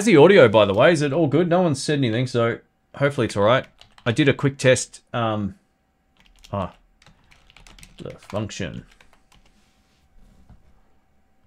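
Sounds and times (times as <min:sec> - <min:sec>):
speech: 0:00.0 - 0:05.6, 0:06.5 - 0:06.8, 0:08.0 - 0:09.0
low hum: 0:00.0 - 0:11.4
computer keyboard typing clicks: 0:03.6 - 0:04.1, 0:06.2 - 0:09.6.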